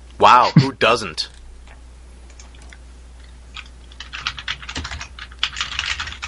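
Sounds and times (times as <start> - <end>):
speech: 0.2 - 1.4
typing on a computer keyboard: 3.6 - 6.2.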